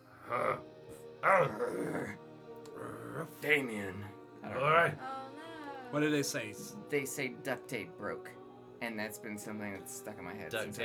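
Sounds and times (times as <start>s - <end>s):
man's voice imitating a dog's growl: 0.2s - 0.6s, 1.2s - 3.4s
speech: 0.3s - 2.2s, 2.8s - 5.2s, 5.9s - 10.8s.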